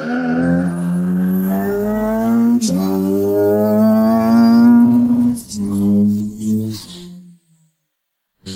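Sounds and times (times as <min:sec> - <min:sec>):
car engine accelerating hard in second gear with the accelerator floored: 0:00.0 - 0:06.6.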